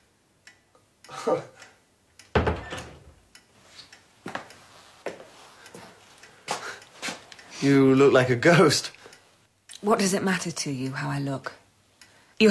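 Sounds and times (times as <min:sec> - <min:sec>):
speech: 0:01.2 - 0:01.5, 0:07.6 - 0:09.0, 0:09.8 - 0:11.6, 0:12.4 - 0:12.5
door swinging shut with solid thud: 0:02.3 - 0:03.2.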